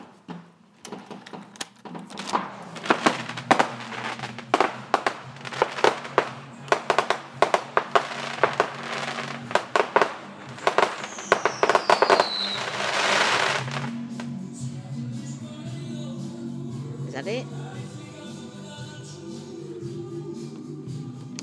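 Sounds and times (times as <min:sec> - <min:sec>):
fireworks exploding: 0:00.0 - 0:14.4
firework whistling streak: 0:02.2 - 0:14.4.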